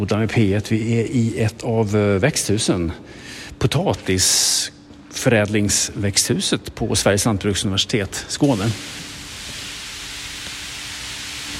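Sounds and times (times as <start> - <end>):
speech: 0.0 - 9.1
greenhouse misting nozzles spraying fine water: 8.4 - 11.5.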